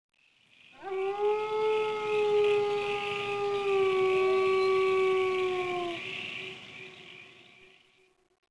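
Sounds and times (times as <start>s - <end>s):
animal howl with a long tonal wail: 0.8s - 6.2s.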